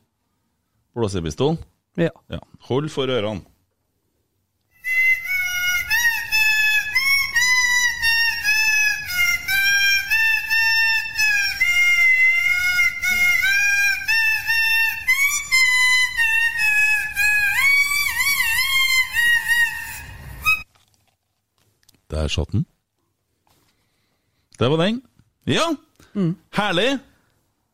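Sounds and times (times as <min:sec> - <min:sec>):
speech: 0:01.0 - 0:03.5, 0:22.3 - 0:22.7, 0:24.6 - 0:27.1
loud shrill whistle playing a short podcast jingle: 0:04.7 - 0:20.7.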